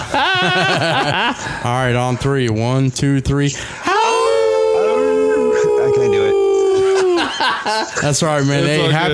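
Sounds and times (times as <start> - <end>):
laughter: 0.0 - 1.6, 4.8 - 8.6
speech: 0.2 - 3.8, 7.6 - 9.1
people howling together imitating a wolf or dog: 3.8 - 7.5.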